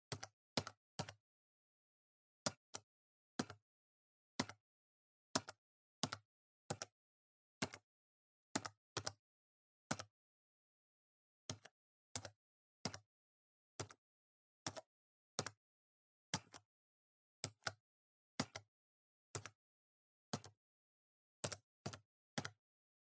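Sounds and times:
gentle PC keyboard typing: 0.1s - 1.2s, 2.5s - 3.6s, 4.4s - 4.6s, 5.4s - 6.9s, 7.6s - 7.9s, 8.6s - 9.2s, 9.9s - 10.1s, 11.5s - 13.1s, 13.8s - 14.0s, 14.6s - 15.6s, 16.4s - 16.7s, 17.4s - 17.8s, 18.4s - 18.7s, 19.4s - 19.6s, 20.3s - 20.6s, 21.4s - 22.6s.

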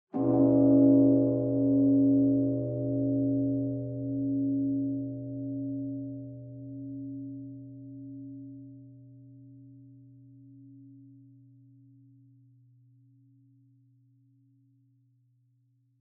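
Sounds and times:
distant low bonsho temple bell: 0.2s - 12.1s.

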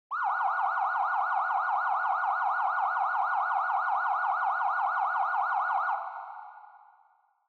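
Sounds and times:
distant police car siren: 0.1s - 6.8s.

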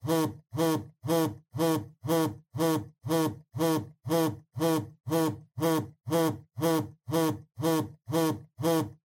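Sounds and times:
cell phone vibrating on a table: 0.0s - 9.0s.

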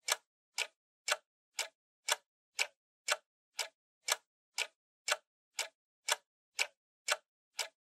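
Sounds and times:
clock second hand ticking: 0.0s - 7.8s.

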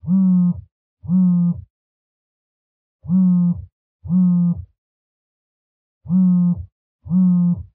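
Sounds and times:
cell phone vibrating on a blanket: 0.0s - 1.7s, 3.0s - 4.8s, 6.0s - 7.7s.

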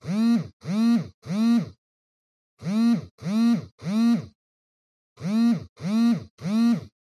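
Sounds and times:
cell phone vibrating on a cushion: 0.0s - 1.8s, 2.6s - 4.4s, 5.2s - 7.0s.

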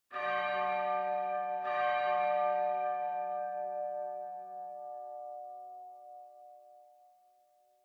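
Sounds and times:
distant high church bell: 0.1s - 7.8s.

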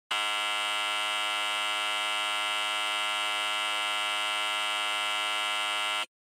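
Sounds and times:
long dry electromagnetic buzzer: 0.1s - 6.1s.

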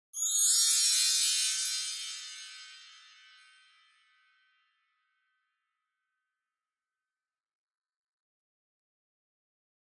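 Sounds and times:
wind chimes with reverb: 0.2s - 4.4s.

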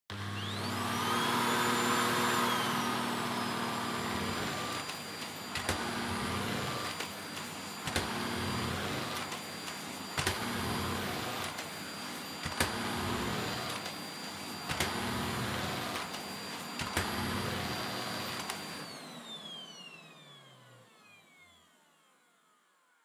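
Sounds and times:
vacuum cleaner vacuuming wood floor: 0.1s - 23.0s.

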